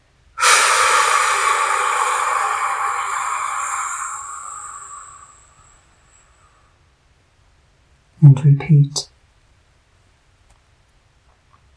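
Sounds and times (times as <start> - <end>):
deep exhalation out through the mouth during a guided breathing exercise: 0.4 - 5.8
speech: 8.2 - 9.1.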